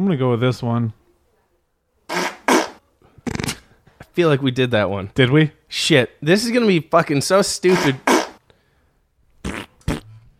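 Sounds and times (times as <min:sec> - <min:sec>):
speech: 0:00.0 - 0:01.0, 0:04.2 - 0:08.1
fart sound effect: 0:02.1 - 0:03.6, 0:07.7 - 0:08.4, 0:09.4 - 0:10.1.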